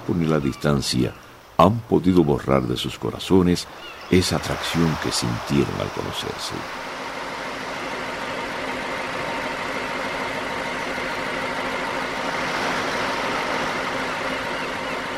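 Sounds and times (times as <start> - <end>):
boat engine droning as the vessel approaches: 0.0 - 15.1
speech: 0.1 - 6.9.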